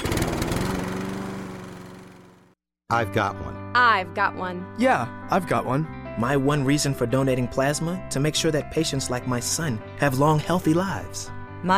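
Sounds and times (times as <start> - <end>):
lawnmower engine starting and idling: 0.0 - 2.6
speech: 2.9 - 11.7.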